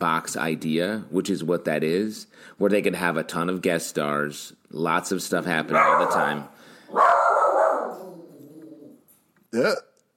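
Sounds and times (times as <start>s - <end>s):
speech: 0.0s - 7.1s, 9.5s - 9.9s
dog short sharp bark: 5.7s - 8.2s
dog howling whine: 7.0s - 9.0s.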